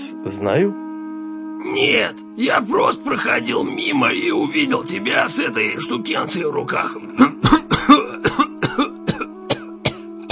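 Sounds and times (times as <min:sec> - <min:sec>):
speech: 0:00.2 - 0:00.8, 0:01.7 - 0:07.3
old man coughing fit: 0:06.9 - 0:10.3.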